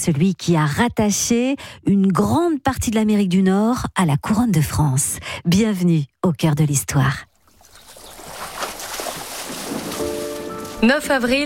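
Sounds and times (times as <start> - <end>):
speech: 0.0 - 7.3, 10.8 - 11.4
canoe paddles dipping slowly into river water: 7.3 - 11.4.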